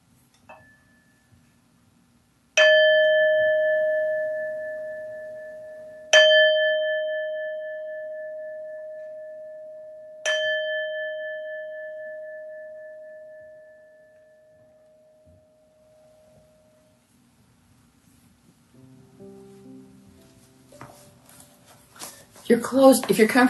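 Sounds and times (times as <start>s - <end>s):
meditation bell chime: 0.5s - 1.4s, 2.6s - 16.9s
speech: 22.5s - 23.4s.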